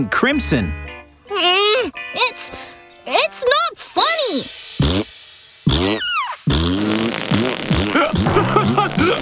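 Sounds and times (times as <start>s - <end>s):
speech: 0.0s - 0.8s, 1.8s - 5.1s, 5.8s - 6.1s, 6.7s - 9.2s
farting with squeaky whistle and rubbery toots: 4.8s - 5.1s, 5.7s - 9.2s.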